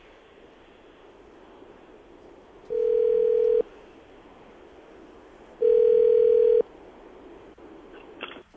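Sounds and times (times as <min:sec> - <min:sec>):
electronic telephone ringback tone while placing a call: 0:02.7 - 0:03.6, 0:05.6 - 0:06.6.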